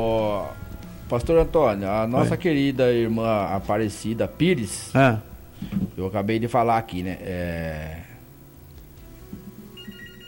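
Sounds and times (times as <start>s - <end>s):
speech: 0.0s - 8.1s
telephone ringing with an incoming call: 9.8s - 10.2s.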